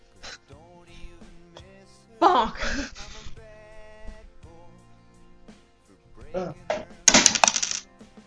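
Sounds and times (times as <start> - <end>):
speech: 2.4 - 3.0, 6.4 - 6.6
dice rolling and clattering across a hard tabletop: 7.1 - 7.8.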